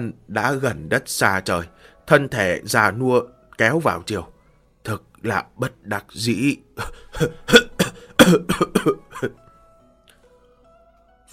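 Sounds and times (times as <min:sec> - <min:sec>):
speech: 0:00.0 - 0:07.6, 0:08.3 - 0:09.4
old man giving dry hacking coughs: 0:06.8 - 0:09.4.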